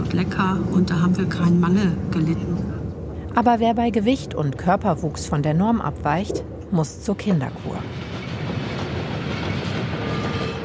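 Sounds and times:
speech: 0.1 - 2.8, 3.4 - 8.1
train wheels clattering on rails over the Hindenburgdamm to Sylt: 7.5 - 10.6.

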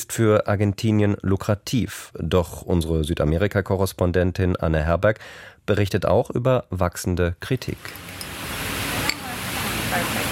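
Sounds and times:
speech: 0.0 - 8.2
water sprinkler spraying fine mist with a loud hum: 7.8 - 10.3.

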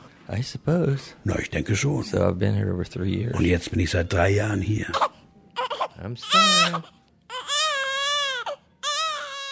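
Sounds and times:
speech: 0.3 - 5.1, 6.0 - 7.0
newborn baby crying: 4.8 - 9.4.

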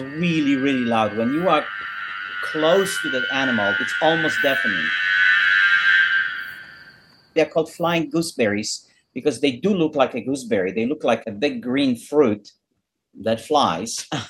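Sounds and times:
person talking: 0.0 - 1.6, 2.4 - 4.9, 7.4 - 12.4
bladder cicada calling with a loud steady droning buzz: 0.0 - 9.3.

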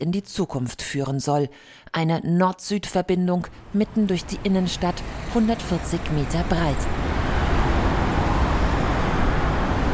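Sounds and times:
speech: 0.0 - 7.2
heavy car traffic on a wide city avenue: 3.5 - 9.9.

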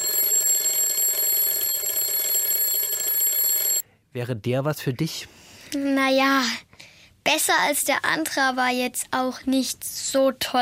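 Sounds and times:
old-fashioned bell alarm clock ringing: 0.0 - 3.8
speech: 4.1 - 6.7, 7.3 - 10.6.

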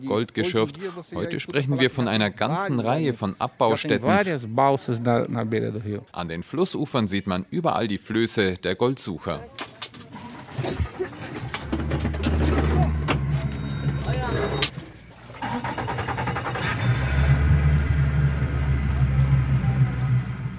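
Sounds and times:
speech: 0.0 - 9.7
motorboat engine droning on a river: 10.2 - 20.5.

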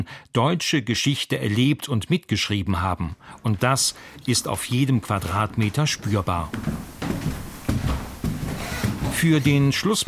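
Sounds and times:
speech: 0.0 - 7.4, 9.2 - 10.0
slow heavy footsteps on creaking wooden stairs and floorboards in a historic house: 3.8 - 10.0.

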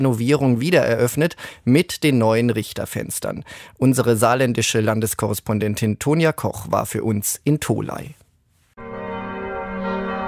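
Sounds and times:
speech: 0.0 - 8.2
church bells of an abbey church in Tholey, Germany, ringing over a market square: 8.8 - 10.2.

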